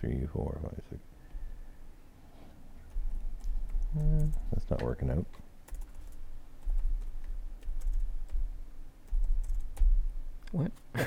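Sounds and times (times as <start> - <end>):
speech: 0.0 - 1.2, 3.9 - 5.4, 10.5 - 11.0
typing on a computer keyboard: 2.8 - 10.0.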